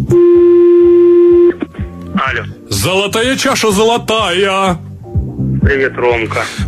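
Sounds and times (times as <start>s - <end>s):
steady electronic tone on a telephone line as a call is placed: 0.1s - 1.6s
speech: 2.3s - 4.9s, 5.7s - 6.6s.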